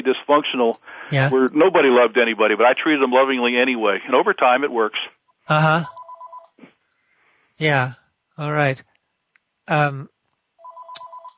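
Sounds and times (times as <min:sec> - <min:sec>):
speech: 0:00.0 - 0:06.0, 0:07.6 - 0:08.9, 0:09.7 - 0:10.1
telephone ringing next to desk: 0:05.5 - 0:06.6, 0:10.6 - 0:11.3.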